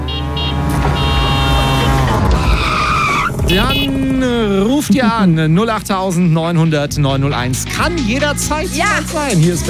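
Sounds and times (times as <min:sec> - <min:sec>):
tuk-tuk driving by with buzzing engine drone and whining tones: 0:00.0 - 0:04.8
speech: 0:03.5 - 0:03.9, 0:04.6 - 0:09.6.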